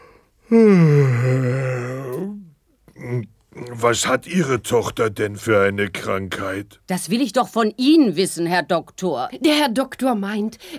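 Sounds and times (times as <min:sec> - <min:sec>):
speech: 0:00.5 - 0:01.2, 0:03.8 - 0:10.7
brief vocal sound: 0:00.5 - 0:03.3
person yawning: 0:00.5 - 0:03.3.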